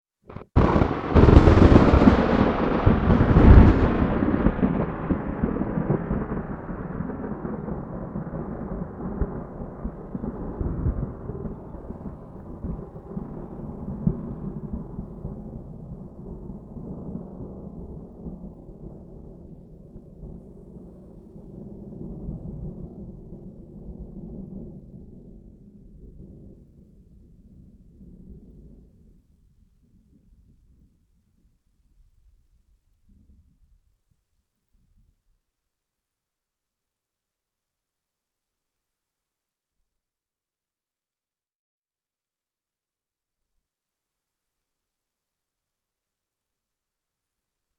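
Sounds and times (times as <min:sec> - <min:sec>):
heavy rain: 0:00.3 - 0:16.8.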